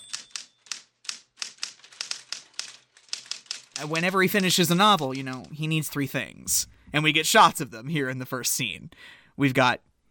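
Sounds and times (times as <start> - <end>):
sharp clacking keystrokes from a manual typewriter: 0.0 - 5.6
speech: 3.8 - 9.9.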